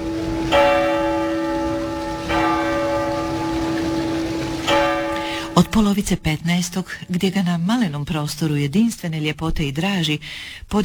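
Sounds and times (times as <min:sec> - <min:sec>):
15th century city clock tower bell ringing: 0:00.0 - 0:06.7
speech: 0:05.6 - 0:10.8.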